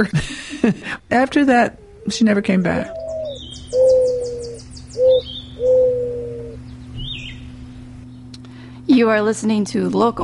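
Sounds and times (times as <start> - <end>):
speech: 0.0 - 3.0, 9.0 - 10.2
mourning dove cooing: 1.6 - 7.8
faint high chirps from other birds: 2.9 - 8.3.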